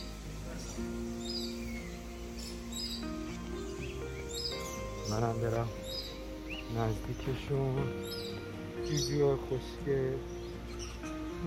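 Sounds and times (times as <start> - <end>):
birds chirping: 0.0 - 11.4
speech: 5.1 - 5.8, 6.7 - 8.2, 8.9 - 10.4.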